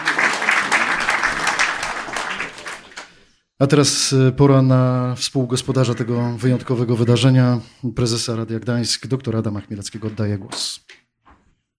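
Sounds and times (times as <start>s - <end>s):
studio crowd applauding to welcome a guest: 0.0s - 3.3s
speech: 3.6s - 11.0s.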